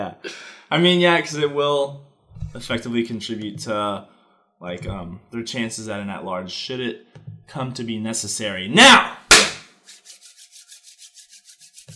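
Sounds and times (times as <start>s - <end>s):
speech: 0.0s - 9.2s
hands rubbing together briskly: 9.7s - 11.9s.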